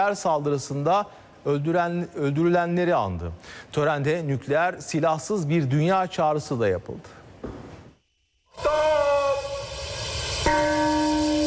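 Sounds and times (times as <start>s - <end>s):
speech: 0.0s - 7.6s
bell tolling at a memorial ceremony in Hiroshima, Japan: 8.6s - 11.4s.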